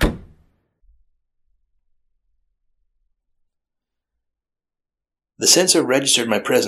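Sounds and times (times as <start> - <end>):
door thudding open: 0.0 - 0.5
speech: 5.4 - 6.6.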